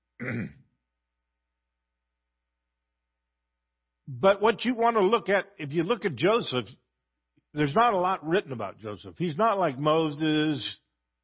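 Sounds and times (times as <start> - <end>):
speech: 0.2 - 0.6, 4.1 - 6.8, 7.5 - 10.8
gravelly throat clearing: 0.2 - 0.7.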